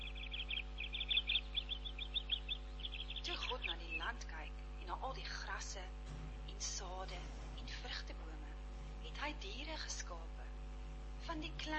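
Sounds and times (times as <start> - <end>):
small birds chirping: 0.0 - 5.6
low steady hum: 0.0 - 11.7
speech: 4.9 - 10.6, 11.2 - 11.7.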